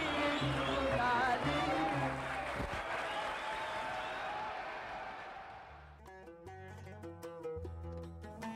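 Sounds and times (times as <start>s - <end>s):
concert audience applauding warmly: 0.0s - 6.0s.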